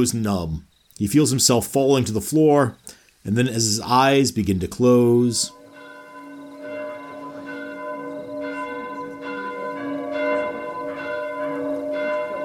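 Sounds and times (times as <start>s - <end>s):
speech: 0.0s - 5.6s
church bells ringing: 5.5s - 12.4s.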